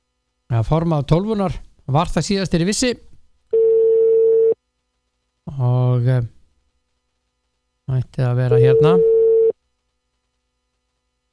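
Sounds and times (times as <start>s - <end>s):
speech: 0.5s - 3.1s, 5.5s - 6.4s, 7.9s - 9.1s
telephone ringback tone while a call is placed: 3.6s - 4.6s, 8.5s - 9.5s.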